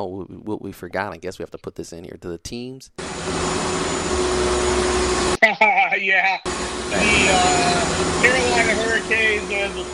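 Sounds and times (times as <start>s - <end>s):
speech: 0.0s - 9.9s
vacuum cleaner running: 3.0s - 5.4s, 6.5s - 9.9s.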